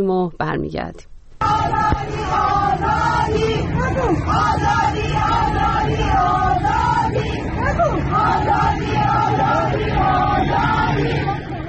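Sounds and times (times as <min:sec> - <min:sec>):
speech: 0:00.0 - 0:11.5
crowd of women chanting slogans while marching through a street in Tehran: 0:01.4 - 0:11.6.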